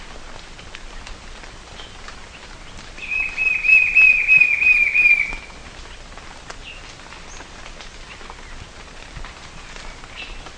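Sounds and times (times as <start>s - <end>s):
White-shouldered fire-eye Pyriglena leucoptera whistling song: 3.0s - 5.5s.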